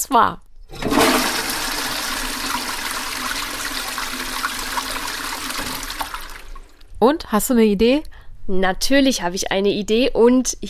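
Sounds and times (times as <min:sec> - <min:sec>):
speech: 0:00.0 - 0:01.0, 0:07.0 - 0:10.6
toilet flushing: 0:00.7 - 0:06.8.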